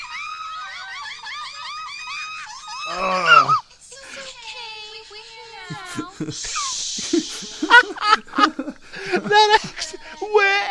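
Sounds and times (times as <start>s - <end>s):
laughter: 0.0s - 3.6s, 5.7s - 10.5s
woman screaming in a played clip: 0.0s - 3.6s
speech: 2.9s - 3.6s, 6.2s - 10.6s.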